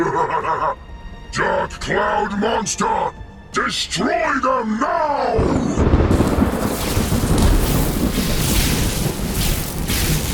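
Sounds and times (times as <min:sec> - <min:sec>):
speech: 0:00.2 - 0:06.0
deep rumbling thunder from violent lightning strikes: 0:05.8 - 0:10.3
heavy rushing storm noise: 0:05.8 - 0:10.3.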